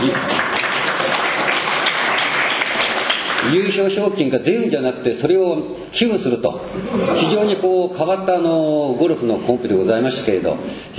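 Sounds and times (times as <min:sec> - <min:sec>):
audience applause: 0:00.0 - 0:03.8
speech: 0:03.4 - 0:10.9
laughter: 0:06.7 - 0:07.8.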